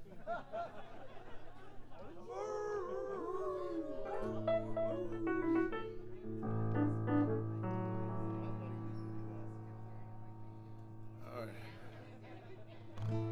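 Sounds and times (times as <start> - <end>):
laughter: 0.0 - 6.8, 11.4 - 13.2
dog howling and yipping along with music: 2.3 - 6.5
sustained musical notes: 4.2 - 12.9.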